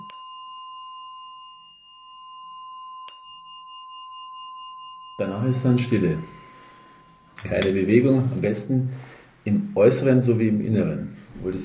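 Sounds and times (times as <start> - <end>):
meditation standing bell struck and ringing: 0.0 - 9.0
speech: 5.2 - 6.4, 7.4 - 11.6.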